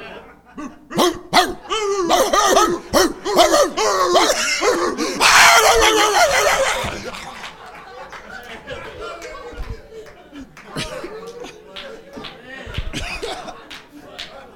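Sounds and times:
laughter: 0.0 - 14.5
person imitating dog with yelping barks: 0.6 - 7.1.

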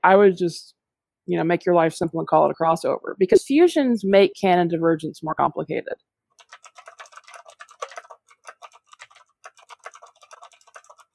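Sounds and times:
speech: 0.0 - 6.1
typing on a computer keyboard: 6.4 - 11.1.

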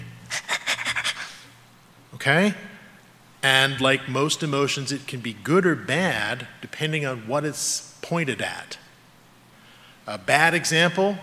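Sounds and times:
quick heavy panting: 0.3 - 1.5
speech: 2.2 - 2.7, 3.4 - 8.8, 10.1 - 11.2.

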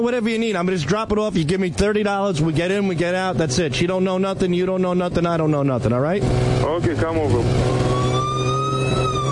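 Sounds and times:
speech: 0.0 - 7.9
low rumbling police car engine drone: 2.5 - 9.3
police car siren wailing while chasing a vehicle: 7.1 - 9.3.

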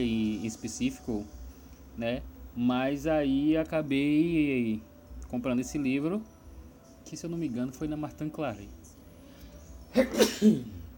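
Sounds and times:
speech: 0.0 - 1.4, 2.0 - 6.3, 7.0 - 8.8, 9.9 - 10.8
person sneezing: 9.9 - 10.8.

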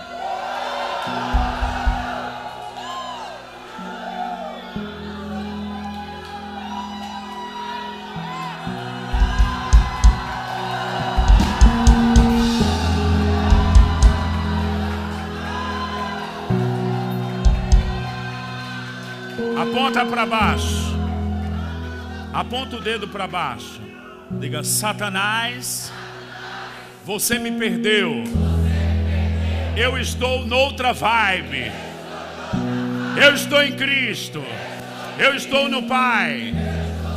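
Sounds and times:
large crowd shouting and cheering: 0.0 - 37.1
heavy deep thumps: 1.4 - 2.2, 11.2 - 14.4
speech: 19.9 - 20.7, 22.4 - 26.0, 27.1 - 28.5, 29.8 - 31.8, 33.2 - 36.7.

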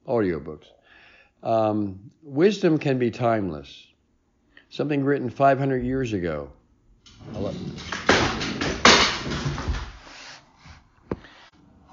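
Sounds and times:
speech: 0.1 - 3.9, 4.7 - 6.6, 7.2 - 8.0
picture frame toppling and breaking: 7.1 - 10.0.

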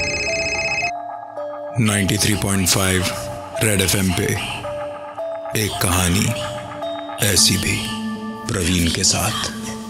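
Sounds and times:
electronic phone ring tone of an outgoing call: 0.0 - 1.0
speech: 1.8 - 4.6, 5.5 - 6.6, 7.2 - 9.7.

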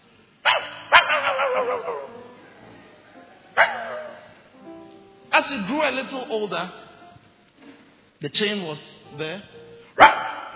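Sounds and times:
dog barking: 0.4 - 2.1, 3.6 - 4.3, 10.0 - 10.5
speech: 5.4 - 6.8, 8.2 - 10.1.

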